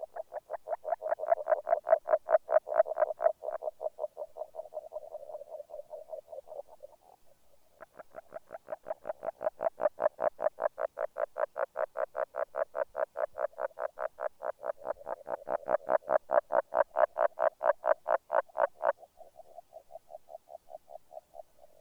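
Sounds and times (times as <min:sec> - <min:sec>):
agile frog calling a rapid train of notes: 0:00.0 - 0:21.7.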